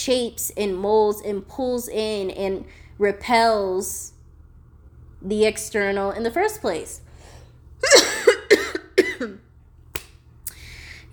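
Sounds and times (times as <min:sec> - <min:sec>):
speech: 0:00.0 - 0:04.2, 0:05.2 - 0:07.0, 0:07.8 - 0:08.1, 0:09.2 - 0:09.4
faint low hum: 0:00.0 - 0:11.1
person coughing: 0:07.8 - 0:09.4.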